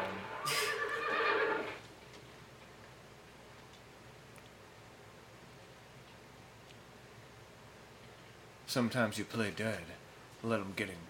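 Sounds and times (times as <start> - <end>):
horse whinnying in a wavering shrill neigh: 0.0 - 1.8
speech: 8.7 - 11.0.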